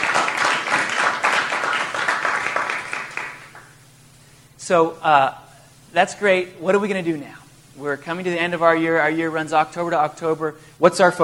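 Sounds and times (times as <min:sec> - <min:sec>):
crowd clapping in worship: 0:00.0 - 0:03.8
speech: 0:04.7 - 0:11.2.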